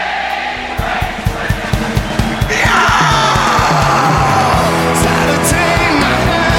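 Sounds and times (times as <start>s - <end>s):
concert crowd screaming and yelling during encore: 0.0s - 6.5s
loud live music with a steady pounding beat: 0.5s - 6.5s.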